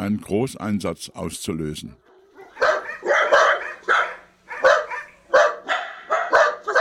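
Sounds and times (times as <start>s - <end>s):
speech: 0.0s - 2.0s
dachshund barking: 2.0s - 6.8s.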